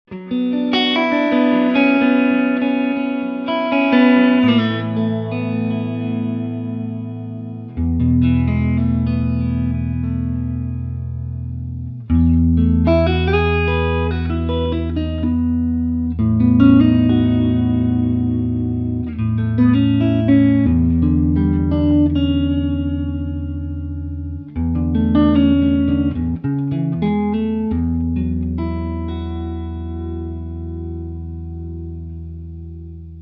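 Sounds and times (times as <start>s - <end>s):
clean electric guitar: 0.0s - 33.1s.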